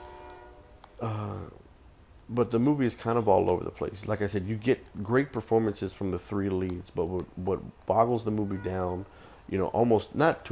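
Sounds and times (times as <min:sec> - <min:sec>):
train horn from a passing train: 0:00.0 - 0:01.0, 0:08.6 - 0:09.0
speech: 0:02.3 - 0:10.5.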